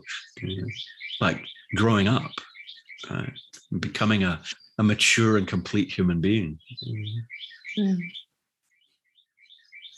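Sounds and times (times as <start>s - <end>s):
person murmuring: 0.0s - 1.4s, 3.1s - 4.2s, 5.8s - 7.2s
speech: 0.0s - 2.4s, 3.1s - 8.2s
bird chirping high tweets: 0.0s - 9.9s.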